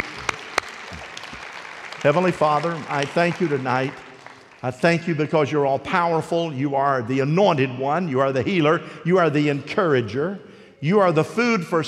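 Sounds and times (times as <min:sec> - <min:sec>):
standing audience applauding: 0:00.0 - 0:04.8
speech: 0:02.0 - 0:04.0, 0:04.6 - 0:11.8.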